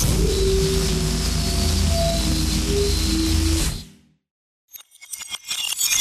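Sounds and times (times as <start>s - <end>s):
deep bass magic hum: 0.0s - 3.9s
breaking mug shatter played in reverse: 4.7s - 5.9s.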